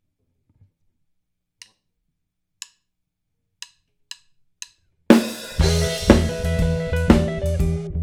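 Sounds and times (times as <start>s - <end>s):
drums playing a Chicago blues shuffle: 5.1s - 7.9s.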